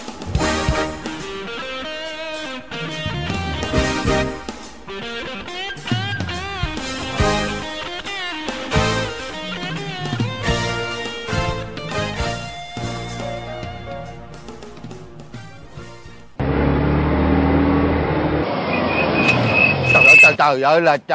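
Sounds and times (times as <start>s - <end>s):
music: 0.0s - 16.4s
loud close engine and road noise: 0.0s - 20.5s
vehicle braking hard: 18.6s - 20.4s
speech: 20.5s - 21.1s.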